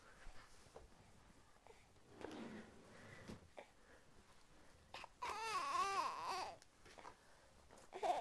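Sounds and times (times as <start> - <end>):
young child crying and fussing at home: 4.9 - 6.6, 7.9 - 8.1.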